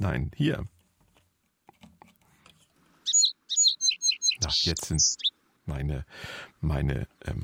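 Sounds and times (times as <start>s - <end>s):
speech: 0.0s - 0.8s, 4.4s - 7.4s
sparrows chirping: 3.0s - 5.3s.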